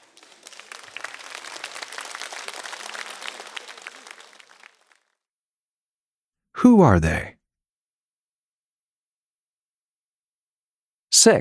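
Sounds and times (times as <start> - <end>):
audience clapping hands: 0.0 - 5.2
speech: 6.6 - 7.3, 11.2 - 11.4.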